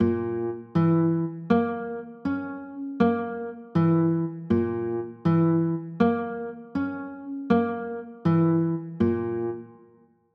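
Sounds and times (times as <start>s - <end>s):
B flat diminished chords: 0.0s - 9.8s.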